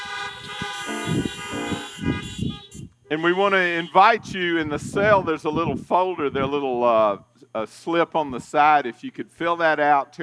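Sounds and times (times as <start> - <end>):
several car horns honking together: 0.0 - 4.2
speech: 3.1 - 10.2.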